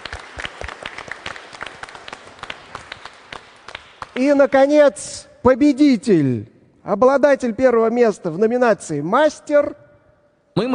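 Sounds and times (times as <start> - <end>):
audience applauding a prize winner: 0.0 - 4.5
speech: 4.2 - 9.8, 10.6 - 10.7.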